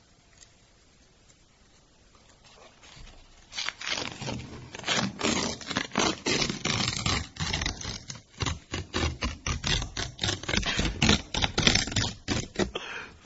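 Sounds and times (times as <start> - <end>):
paper scraped and crumpled: 2.4 - 12.8.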